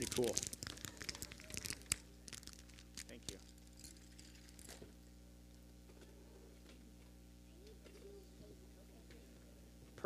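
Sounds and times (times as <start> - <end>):
speech: 0.0 - 0.6
paper sheets rustling and crinkling as they are passed around: 0.0 - 4.8.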